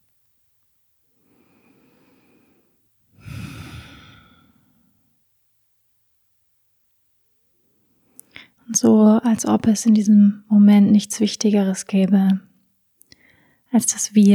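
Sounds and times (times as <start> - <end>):
deep breathing in and out during a guided relaxation: 1.2 - 5.0, 13.2 - 13.7
speech: 8.7 - 12.5, 13.7 - 14.3.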